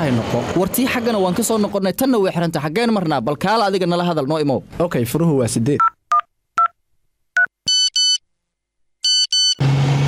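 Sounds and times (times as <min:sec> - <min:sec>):
speech: 0:00.0 - 0:05.9
mobile phone ringtone: 0:07.7 - 0:08.2, 0:09.0 - 0:09.6.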